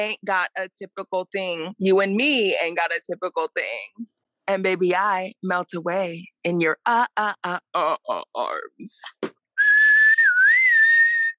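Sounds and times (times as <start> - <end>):
speech: 0.0 - 9.3
clear whistle in the background of a song: 9.6 - 11.3.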